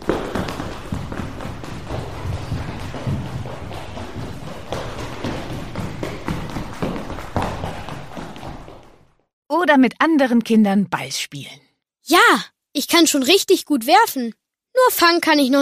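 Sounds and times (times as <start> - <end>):
child's running footsteps in a large indoor hall: 0.0 - 9.2
speech: 9.6 - 15.6.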